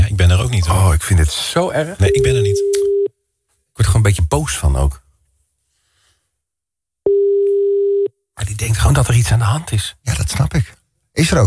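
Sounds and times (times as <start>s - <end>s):
speech: 0.6s - 2.8s, 3.8s - 5.0s, 8.4s - 11.4s
ringing tone of an unanswered outgoing telephone call: 7.1s - 8.1s.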